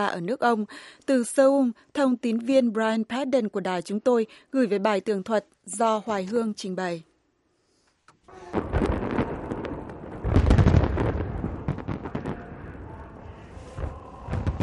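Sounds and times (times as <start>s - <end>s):
speech: 0.0s - 7.1s
fireworks display booming and crackling: 8.4s - 14.6s.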